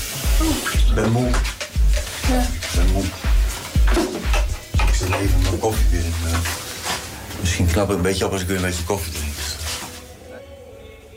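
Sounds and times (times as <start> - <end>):
water running from a kitchen tap filling a kettle: 0.0 - 6.6
speech: 0.4 - 1.6, 5.1 - 6.6, 7.4 - 9.3.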